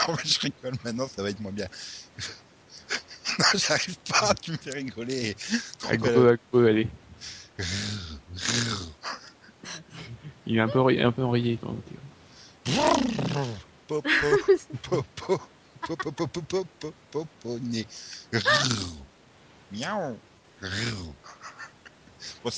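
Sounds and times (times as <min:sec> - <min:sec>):
laughter: 0:00.0 - 0:06.2, 0:07.6 - 0:10.9, 0:12.7 - 0:16.6, 0:18.3 - 0:18.7
speech: 0:00.0 - 0:09.8, 0:10.5 - 0:12.0, 0:12.7 - 0:19.1, 0:19.7 - 0:21.4, 0:22.2 - 0:22.5
person imitating a tiger roar: 0:07.6 - 0:09.0, 0:12.7 - 0:13.6, 0:18.3 - 0:19.0.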